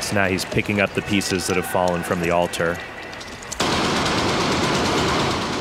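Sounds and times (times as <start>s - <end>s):
speech: 0.2s - 3.0s
rapid gunfire aimed at a man near an altar: 3.6s - 5.5s.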